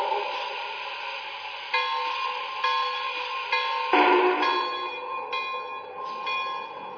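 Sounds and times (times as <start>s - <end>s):
train bell clanging at station: 1.7s - 6.9s.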